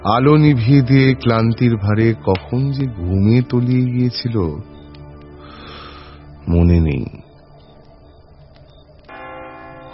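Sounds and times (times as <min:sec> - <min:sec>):
speech: 0:00.0 - 0:04.7, 0:06.5 - 0:07.2
church clock bell striking two o'clock: 0:09.1 - 0:09.9.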